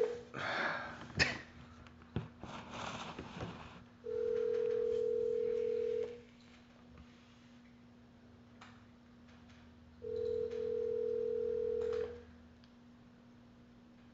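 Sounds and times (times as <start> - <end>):
faint electrical hum: 0.0 - 14.1
ringback tone from an outgoing phone call: 4.1 - 6.2, 10.0 - 12.2.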